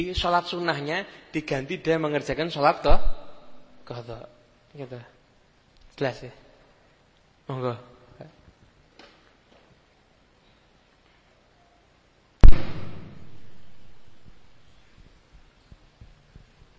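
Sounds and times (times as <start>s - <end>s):
speech: 0.0s - 3.2s, 3.9s - 5.1s, 6.0s - 6.4s, 7.5s - 8.4s
firecracker bang: 12.4s - 14.4s.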